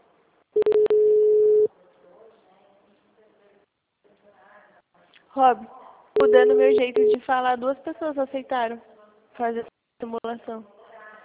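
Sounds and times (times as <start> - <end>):
telephone ringing tone while placing a call: 0.6 - 1.7, 6.2 - 7.2
speech: 5.4 - 10.8.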